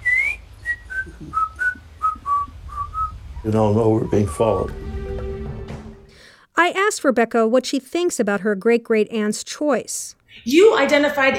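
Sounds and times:
person whistling a tune: 0.0s - 4.8s
low rumble: 0.0s - 6.1s
speech: 3.4s - 4.8s, 6.6s - 11.3s.

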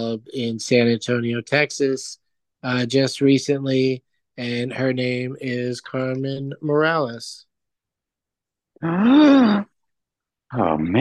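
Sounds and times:
speech: 0.0s - 7.5s, 8.8s - 9.7s, 10.5s - 11.0s
excited gasp: 8.8s - 9.8s.

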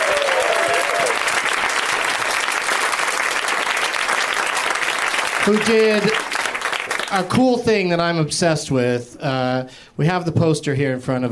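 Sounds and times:
studio audience applause: 0.0s - 7.6s
speech: 5.5s - 6.4s, 7.1s - 11.3s.

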